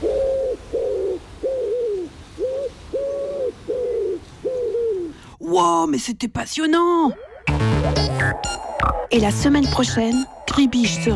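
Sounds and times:
wood pigeon cooing: 0.0s - 5.3s, 7.1s - 9.1s
speech: 5.5s - 7.2s, 8.4s - 11.1s.

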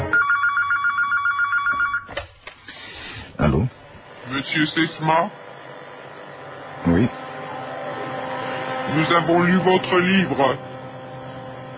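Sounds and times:
telephone ringing with trilling electronic tone: 0.0s - 2.2s
speech: 4.4s - 5.4s, 6.9s - 7.2s, 9.0s - 10.7s.

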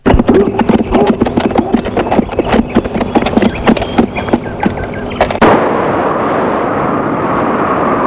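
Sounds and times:
horse hoofbeats galloping: 0.0s - 5.4s
steady rushing wind-like noise: 1.2s - 8.0s.

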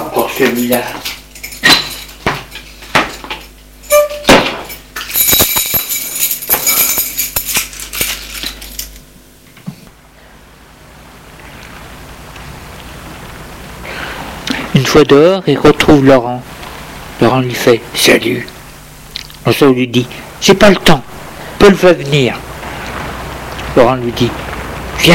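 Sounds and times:
keys jangling: 0.2s - 9.0s
speech: 0.4s - 1.2s, 15.0s - 16.5s, 17.2s - 18.6s, 19.4s - 22.4s, 23.8s - 24.4s
quiet hiss: 3.8s - 25.1s.

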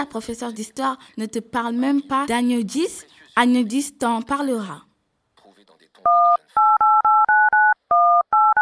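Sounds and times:
speech: 0.0s - 4.9s
mobile phone DTMF keypad tones while dialing: 6.1s - 8.5s.

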